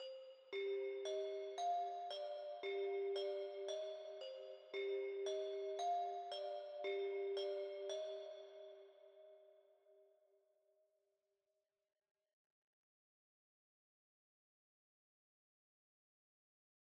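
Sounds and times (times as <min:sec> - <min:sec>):
dark bell in C minor at 114 BPM: 0:00.0 - 0:09.4.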